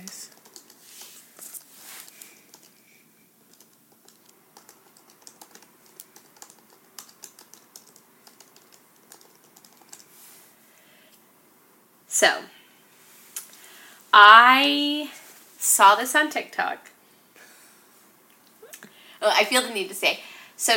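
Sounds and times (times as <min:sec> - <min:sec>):
rapid computer keyboard typing: 0:00.0 - 0:01.1, 0:02.1 - 0:02.8, 0:03.5 - 0:10.1
speech: 0:12.2 - 0:12.6, 0:14.2 - 0:16.9, 0:19.2 - 0:20.7.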